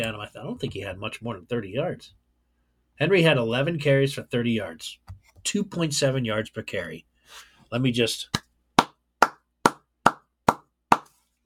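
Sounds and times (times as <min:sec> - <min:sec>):
speech: 0:00.0 - 0:02.2, 0:03.0 - 0:08.4
crisp hand claps by a single person: 0:08.3 - 0:11.2.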